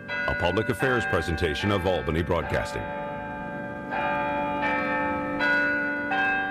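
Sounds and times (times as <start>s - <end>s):
large city hall bells ringing: 0.0s - 6.5s
speech: 0.3s - 3.1s.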